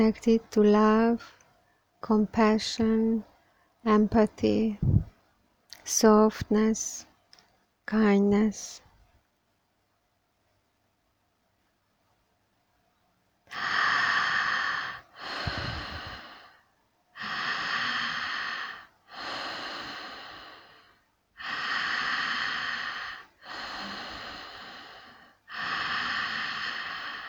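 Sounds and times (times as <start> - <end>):
speech: 0.0 - 1.4, 2.0 - 5.1, 5.9 - 7.1, 7.9 - 8.8, 13.5 - 14.0
deep breathing during a guided breathing exercise: 4.7 - 5.1, 13.5 - 27.2.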